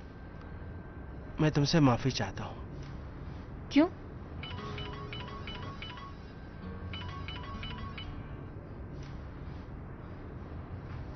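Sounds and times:
speech: 1.4 - 2.6, 3.7 - 4.0
phone ringtone chirping in rapid electronic tones: 4.4 - 8.3.

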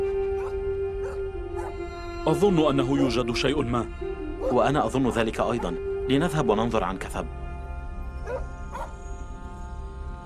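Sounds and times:
dog barking and whimpering: 0.0 - 1.7, 8.2 - 8.9
speech: 2.2 - 7.4.

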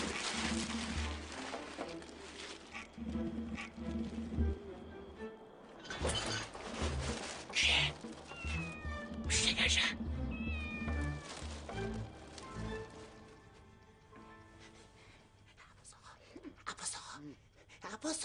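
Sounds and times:
rustling noise: 0.0 - 4.9, 6.0 - 13.9
cat meowing: 7.6 - 11.3.

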